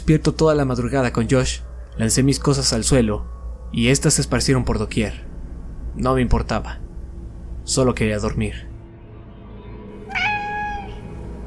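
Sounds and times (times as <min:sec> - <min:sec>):
low steady hum: 0:00.0 - 0:11.4
speech: 0:00.1 - 0:05.3, 0:06.0 - 0:06.8, 0:07.7 - 0:08.7
cat meowing: 0:10.1 - 0:11.2.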